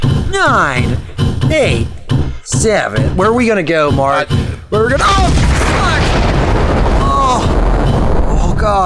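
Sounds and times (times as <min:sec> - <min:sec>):
speech: 0:00.3 - 0:00.9, 0:01.5 - 0:06.1, 0:08.6 - 0:08.8
large explosion: 0:05.0 - 0:08.8.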